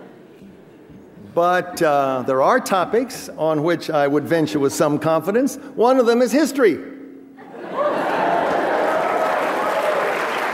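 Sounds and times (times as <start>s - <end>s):
speech: 1.4s - 6.9s
audience applause: 7.8s - 10.5s.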